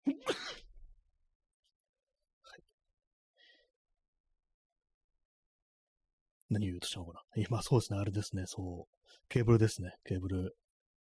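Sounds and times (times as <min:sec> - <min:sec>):
person sneezing: 0:00.1 - 0:00.7
speech: 0:06.5 - 0:10.6.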